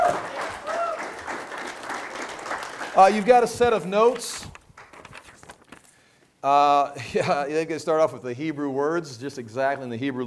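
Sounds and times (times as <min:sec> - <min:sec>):
audience applause at a Bible teaching talk: 0:00.0 - 0:03.6
speech: 0:03.0 - 0:04.6, 0:06.4 - 0:10.2.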